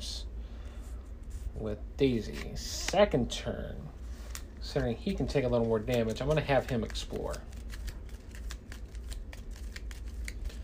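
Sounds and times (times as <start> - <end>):
speech: 1.6 - 4.0, 4.6 - 7.5
deck of cards being shuffled: 2.1 - 3.1, 4.1 - 10.6.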